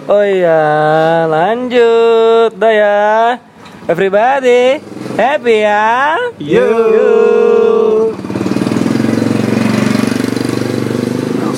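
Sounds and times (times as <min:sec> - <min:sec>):
motorcycle passing by with engine rumbling: 0:00.0 - 0:11.5
speech: 0:00.1 - 0:08.2.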